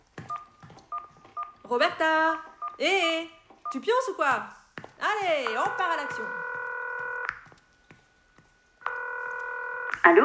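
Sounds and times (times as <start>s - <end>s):
speech: 1.7s - 6.4s, 10.1s - 10.2s
telephone dialing tone for a call: 5.4s - 7.3s, 8.8s - 10.0s.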